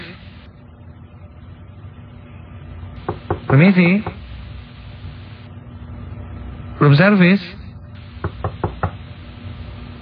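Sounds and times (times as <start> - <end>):
low steady hum: 0.0 - 10.0
knocking on a hotel room door: 3.0 - 4.2, 8.2 - 9.0
speech: 3.5 - 4.2, 6.8 - 7.6.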